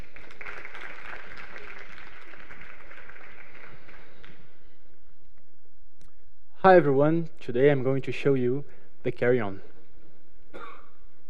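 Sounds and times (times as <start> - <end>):
crowd applauding: 0.0 - 4.7
speech: 6.6 - 9.7.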